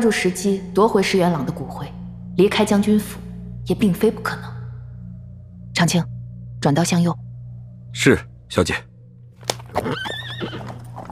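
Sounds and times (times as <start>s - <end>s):
speech: 0.0s - 4.5s, 5.8s - 7.2s, 7.9s - 8.9s, 9.8s - 10.5s
horse pulling a carriage whinnying in a wavering tremulous call: 9.4s - 11.1s
sharp horse hoof clops: 9.4s - 11.1s.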